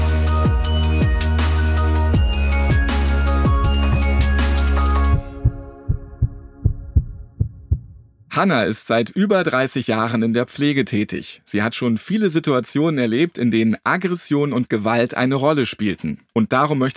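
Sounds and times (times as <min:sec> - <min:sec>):
loud dense wash of music: 0:00.0 - 0:08.2
heartbeat sound effect thumping: 0:05.1 - 0:08.3
speech: 0:08.4 - 0:16.9.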